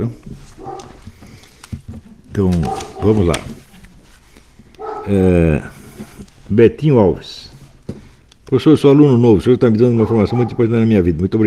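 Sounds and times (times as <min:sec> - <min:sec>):
speech: 0:00.0 - 0:00.3, 0:02.4 - 0:03.6, 0:05.1 - 0:05.8, 0:06.5 - 0:07.5, 0:08.5 - 0:11.4
small dog barking: 0:00.6 - 0:01.0, 0:02.6 - 0:03.2, 0:04.8 - 0:05.2, 0:10.0 - 0:10.7
small dog yipping and whimpering: 0:04.8 - 0:05.1, 0:10.0 - 0:10.6.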